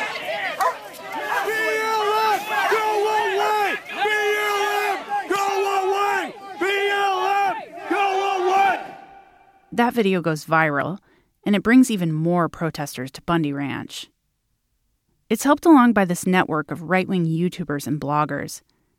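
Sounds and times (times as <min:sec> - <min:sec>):
faint crowd murmur: 0:00.0 - 0:08.0
man yelling angrily after being tased by agents: 0:01.2 - 0:09.4
speech: 0:09.8 - 0:14.2, 0:15.3 - 0:18.7.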